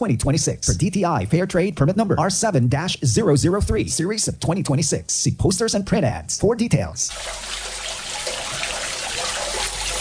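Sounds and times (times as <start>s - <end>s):
speech: 0.0s - 7.8s
water trickling and splashing into a street drain: 7.1s - 9.9s.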